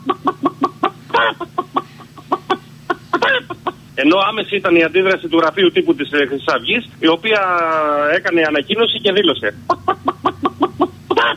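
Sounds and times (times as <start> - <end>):
harsh chicken squawks: 0.0 - 1.7, 9.9 - 11.3
laughter: 0.0 - 6.0, 8.8 - 11.3
speech: 4.0 - 10.1.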